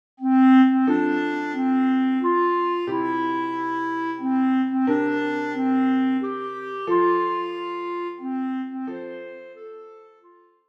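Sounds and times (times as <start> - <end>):
bass clarinet: 0.2 - 10.4.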